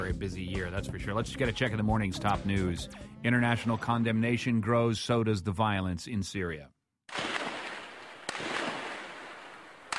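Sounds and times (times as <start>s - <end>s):
speech: 0.0s - 7.2s
gunshots from security forces backed by tanks: 7.1s - 9.9s.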